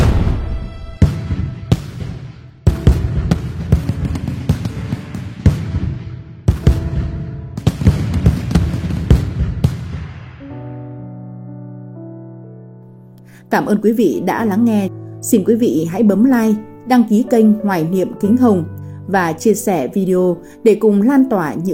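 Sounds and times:
strings of firecrackers exploding for the spring festival: 0:00.0 - 0:10.6
speech: 0:13.5 - 0:21.7.

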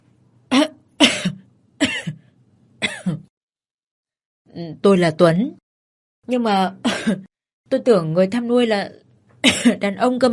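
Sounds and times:
man's fake cough: 0:00.5 - 0:03.3, 0:06.9 - 0:07.3, 0:09.4 - 0:09.8
speech: 0:04.6 - 0:05.6, 0:06.3 - 0:10.3.

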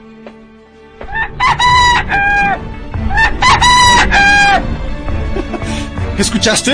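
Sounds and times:
rooster crowing: 0:01.0 - 0:04.7
speech: 0:06.2 - 0:06.7.

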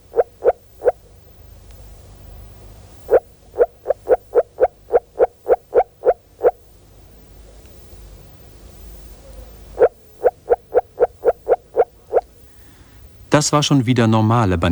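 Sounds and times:
frog calling in short series at 12 °C water temperature: 0:00.0 - 0:01.2, 0:02.6 - 0:07.6, 0:09.1 - 0:12.5
low hum: 0:00.0 - 0:14.7
speech: 0:13.4 - 0:14.7.

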